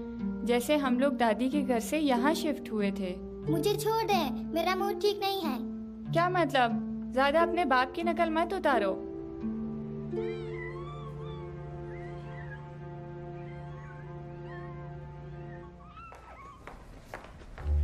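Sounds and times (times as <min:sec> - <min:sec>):
speech: 0:00.0 - 0:09.5
several cats meowing in overlapping wavering cries: 0:10.2 - 0:16.9
shuffling sounds: 0:15.9 - 0:17.8.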